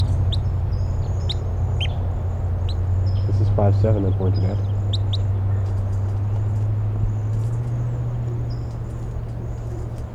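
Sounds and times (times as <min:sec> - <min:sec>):
wild red crossbill type three call notes flying over: 0:00.0 - 0:06.7
loud steady low rumble: 0:00.0 - 0:10.1
speech: 0:03.6 - 0:04.7.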